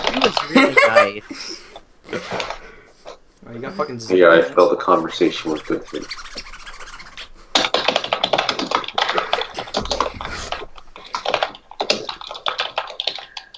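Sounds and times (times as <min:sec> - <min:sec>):
laughter: 0:00.1 - 0:02.4
speech: 0:00.2 - 0:02.7, 0:03.4 - 0:06.5
computer keyboard being hammered rapidly: 0:05.3 - 0:13.5.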